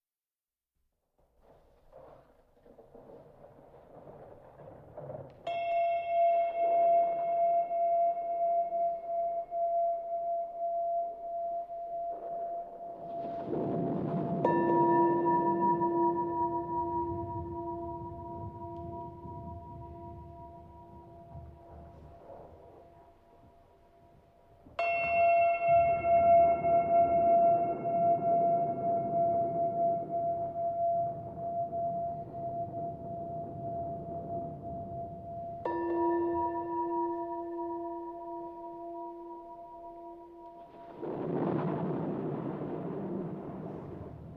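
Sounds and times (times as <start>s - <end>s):
approaching storm: 1.4s - 6.0s, 12.0s - 24.8s, 25.8s - 35.7s, 40.5s - 44.3s
Tibetan singing bowls: 5.4s - 23.6s, 24.8s - 41.7s.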